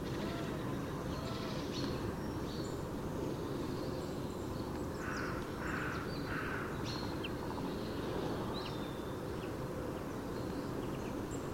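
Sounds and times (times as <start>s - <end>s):
low rumbling background noise: 0.0s - 11.5s
carrion crow (Corvus corone) giving harsh hoarse caws: 5.0s - 6.7s.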